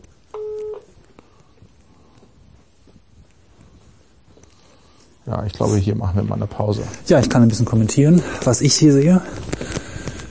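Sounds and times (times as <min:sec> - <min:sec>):
faint noise: 0:00.0 - 0:10.2
telephone ringback tone during an unanswered call: 0:00.3 - 0:00.9
speech: 0:05.3 - 0:09.5.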